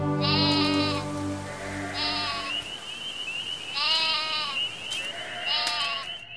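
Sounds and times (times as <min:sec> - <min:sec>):
young goats bleating: 0:00.2 - 0:02.6, 0:03.7 - 0:06.2.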